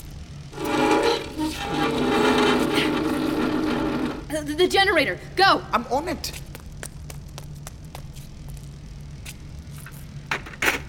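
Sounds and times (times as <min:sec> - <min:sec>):
heavy wooden desk dragged across floor: 0:00.6 - 0:04.3
speech: 0:04.4 - 0:06.5.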